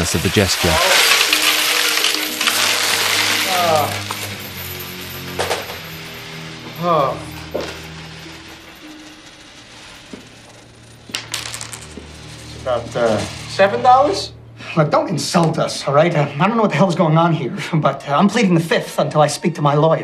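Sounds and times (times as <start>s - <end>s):
speech: 0.0s - 1.1s, 3.6s - 4.1s, 6.8s - 7.8s, 12.7s - 20.0s
coins poured from a small leather pouch onto a table: 0.6s - 13.6s.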